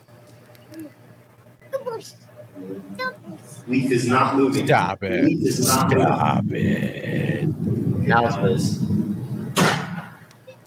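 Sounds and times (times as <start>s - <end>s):
speech: 0.8s - 1.0s, 2.0s - 9.2s
hard slam: 9.5s - 10.2s.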